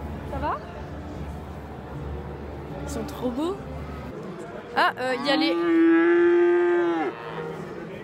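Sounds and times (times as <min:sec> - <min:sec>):
speech: 0:02.9 - 0:03.8, 0:04.8 - 0:06.2
cow mooing: 0:05.2 - 0:07.8.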